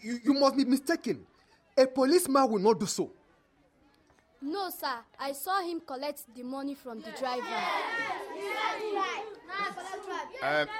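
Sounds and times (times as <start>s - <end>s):
speech: 0.0s - 3.2s, 4.4s - 10.7s
group of children chattering and shouting: 3.2s - 10.7s.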